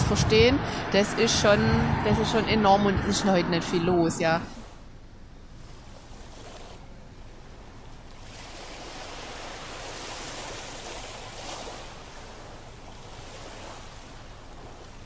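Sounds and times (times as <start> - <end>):
traffic roar on a federal highway at Eglersheim: 0.0 - 5.5
speech: 0.1 - 4.6.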